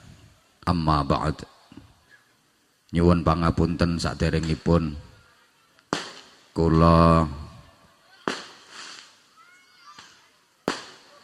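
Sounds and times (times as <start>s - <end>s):
hiss: 0.0s - 11.2s
speech: 0.7s - 1.5s, 2.9s - 5.1s, 6.6s - 7.4s
firecrackers banging: 4.2s - 4.8s, 5.8s - 7.4s, 8.1s - 11.2s.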